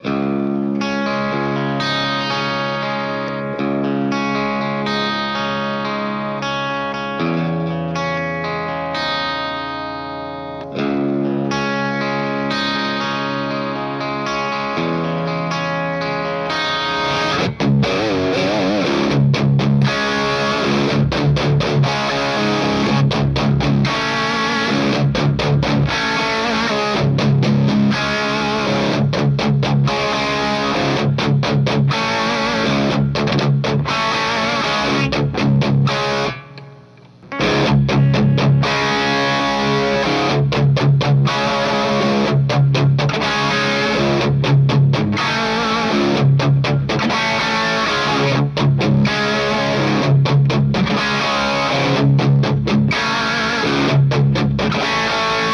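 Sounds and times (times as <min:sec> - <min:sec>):
instrument through two amps with a stereo chorus pedal: 0:00.0 - 0:55.5.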